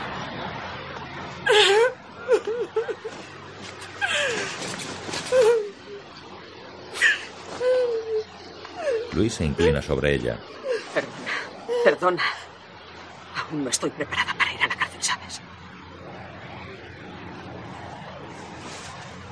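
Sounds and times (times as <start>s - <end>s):
speech: 1.4s - 1.8s, 9.2s - 11.2s, 11.8s - 12.4s, 13.5s - 14.3s
woman crying and sobbing on a bed: 1.5s - 3.2s, 5.2s - 6.0s, 7.0s - 9.1s, 10.6s - 12.2s.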